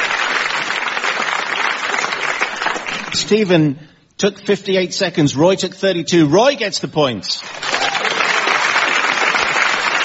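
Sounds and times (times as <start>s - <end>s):
audience applause: 0.0s - 3.2s, 7.4s - 10.0s
speech: 3.2s - 7.7s.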